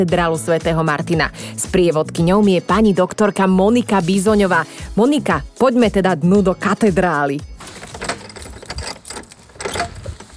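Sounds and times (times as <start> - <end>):
speech: 0.0 - 7.5
large key turning in a heavy lock: 7.6 - 10.2.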